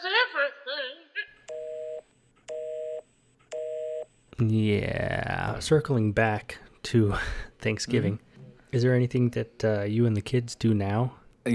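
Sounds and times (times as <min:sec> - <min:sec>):
telephone busy tone from a phone left off the hook: 0:01.5 - 0:04.1
speech: 0:04.4 - 0:11.5.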